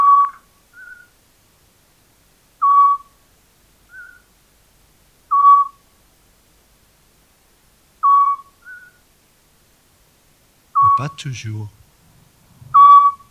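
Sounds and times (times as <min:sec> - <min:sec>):
scops owl calling with short clear whistled notes at night: 0:00.0 - 0:01.1, 0:02.6 - 0:03.2, 0:03.9 - 0:04.3, 0:05.3 - 0:05.8, 0:08.0 - 0:09.0, 0:10.8 - 0:11.0, 0:12.7 - 0:13.2
softer higher answering note: 0:10.8 - 0:11.8
speech: 0:11.0 - 0:11.8.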